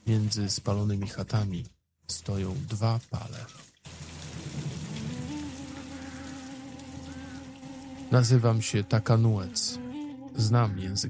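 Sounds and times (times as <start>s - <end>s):
speech: 0.1s - 4.0s, 8.1s - 11.0s
steady rain falling: 3.9s - 8.5s.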